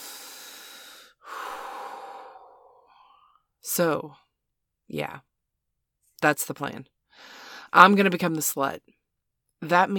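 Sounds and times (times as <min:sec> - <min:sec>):
deep breathing in and out: 0:00.0 - 0:03.4
speech: 0:03.7 - 0:04.2, 0:04.9 - 0:05.3, 0:06.2 - 0:09.0, 0:09.6 - 0:09.9.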